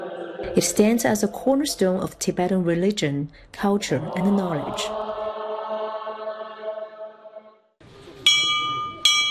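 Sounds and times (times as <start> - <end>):
speech: 0.4 - 5.0
low droning voice: 3.8 - 5.0
bell of Tashilhunpo Monastery ringing in Tibet, signaling scripture recitation: 8.2 - 9.3.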